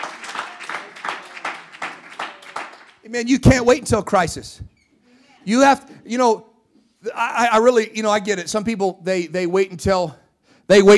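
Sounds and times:
crowd clapping in a steady rhythm to praise God: 0:00.0 - 0:03.5
speech: 0:03.1 - 0:04.7, 0:05.5 - 0:06.5, 0:07.1 - 0:10.9.

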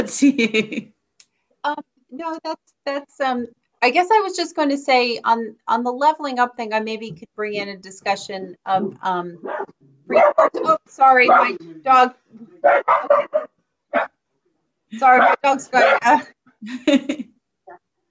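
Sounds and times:
speech: 0:00.0 - 0:01.0, 0:01.6 - 0:14.2, 0:14.9 - 0:17.8
dog barking: 0:09.4 - 0:11.6, 0:12.6 - 0:14.2, 0:15.1 - 0:16.2.

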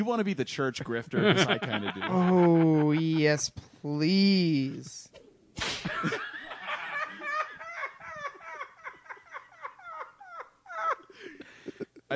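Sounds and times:
speech: 0:00.0 - 0:06.3
laughter: 0:01.1 - 0:03.4, 0:05.6 - 0:12.1
whip crack: 0:05.6 - 0:05.9.

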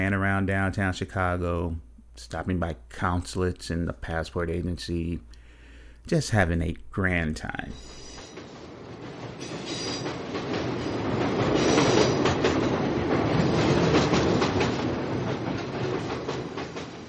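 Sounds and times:
speech: 0:00.0 - 0:05.4, 0:06.0 - 0:08.0
elevated commuter train rolling on tracks: 0:07.7 - 0:17.0
rhythmic clacking over rail joints: 0:07.9 - 0:17.0.

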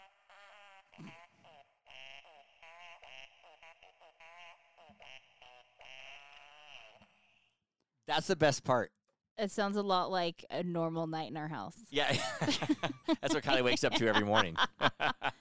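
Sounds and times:
musical farting Santa Christmas ornament making fart noises: 0:00.0 - 0:07.3
speech: 0:08.1 - 0:15.3
laughter: 0:12.0 - 0:15.3.

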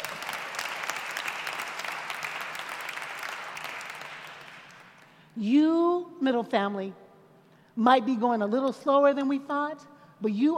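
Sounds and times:
audience applause: 0:00.0 - 0:05.0
speech: 0:05.4 - 0:07.0, 0:07.8 - 0:10.5.

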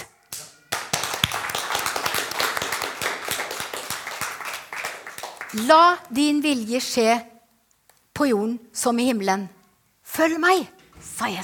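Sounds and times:
audience applause: 0:00.7 - 0:05.7
speech: 0:05.5 - 0:07.3, 0:08.2 - 0:09.6, 0:10.2 - 0:11.4.

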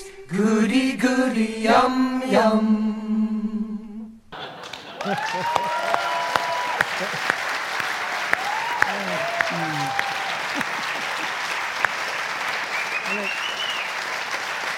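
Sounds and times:
speech: 0:00.3 - 0:03.0, 0:05.0 - 0:06.1
laughter: 0:04.4 - 0:13.6
audience clapping: 0:04.4 - 0:14.7
people whooping: 0:04.8 - 0:14.3
brief voiced murmurs: 0:08.8 - 0:11.2, 0:12.9 - 0:13.5.

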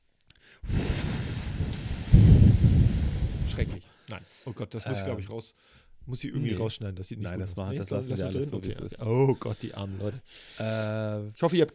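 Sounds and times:
strong wind buffeting a microphone: 0:00.7 - 0:03.8
speech: 0:03.6 - 0:11.7.

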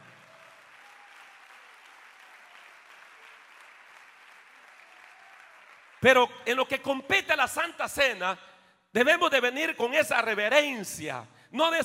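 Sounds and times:
congregation applauding: 0:00.0 - 0:06.8
speech: 0:06.0 - 0:11.8.

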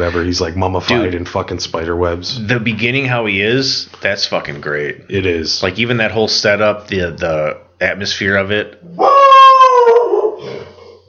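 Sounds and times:
speech: 0:00.0 - 0:09.2
dog howling bark: 0:09.0 - 0:10.4.

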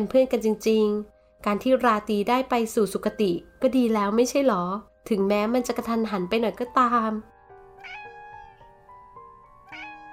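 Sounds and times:
speech: 0:00.0 - 0:07.3
cat meowing: 0:07.8 - 0:08.6, 0:09.7 - 0:10.1.

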